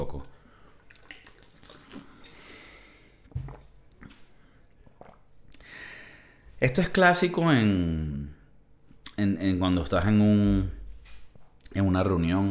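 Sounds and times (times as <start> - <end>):
small wet swallowing and mouth sounds: 0.1 - 5.7
person sipping water: 0.2 - 5.7
speech: 6.6 - 8.4, 9.2 - 10.8, 11.7 - 12.4.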